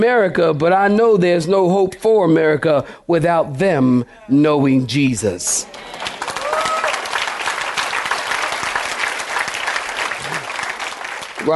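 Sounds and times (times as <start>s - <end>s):
speech: 0.0s - 6.1s
large audience clapping: 5.7s - 11.5s.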